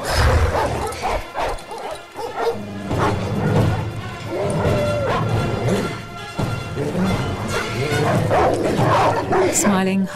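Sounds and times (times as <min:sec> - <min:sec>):
frenzied dogs barking, yipping and snarling in a garage: 0:00.0 - 0:09.8
crashing and banging: 0:02.8 - 0:09.4.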